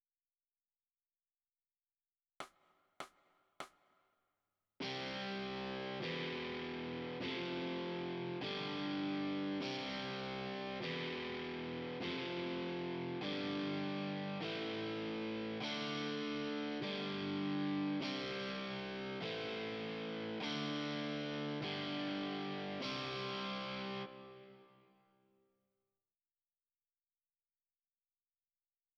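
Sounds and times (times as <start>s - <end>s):
overdriven electric guitar: 4.8s - 25.0s.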